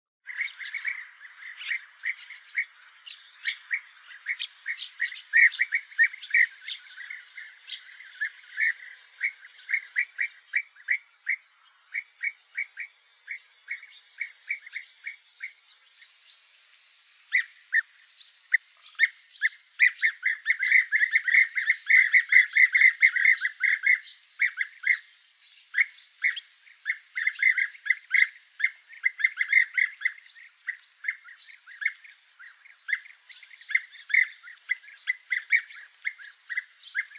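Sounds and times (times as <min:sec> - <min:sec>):
zolna bird sounds: 0:00.2 - 0:37.1.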